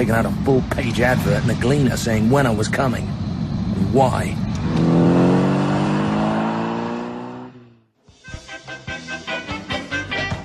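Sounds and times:
speech: 0:00.0 - 0:03.2, 0:03.8 - 0:05.0
taxi engine revving: 0:00.3 - 0:07.9.

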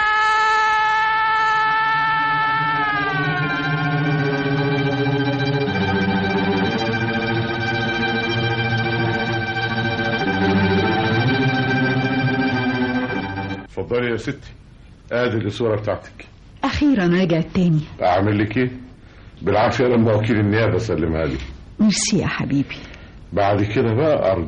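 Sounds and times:
police siren wailing: 0:00.8 - 0:13.7
speech: 0:13.9 - 0:16.2, 0:16.8 - 0:18.8, 0:19.4 - 0:24.4.

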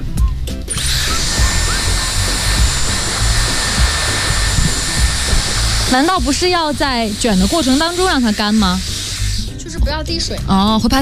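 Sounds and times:
hair dryer blowing: 0:00.7 - 0:09.6
speech: 0:05.9 - 0:08.9, 0:09.8 - 0:11.0.

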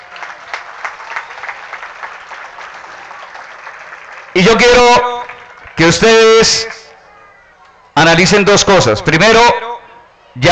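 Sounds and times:
applause from a crowd at a municipal accountability meeting: 0:00.0 - 0:07.8
speech: 0:04.4 - 0:05.2, 0:05.8 - 0:06.8, 0:08.0 - 0:09.6.

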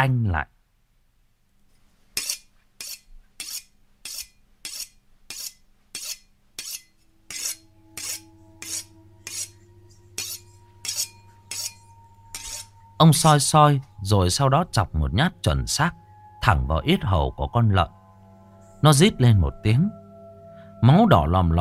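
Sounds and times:
speech: 0:00.0 - 0:00.6, 0:13.0 - 0:18.0, 0:18.8 - 0:20.0, 0:20.8 - 0:21.5
butcher knife sharpened on a whetstone: 0:02.2 - 0:09.6, 0:10.2 - 0:12.7.

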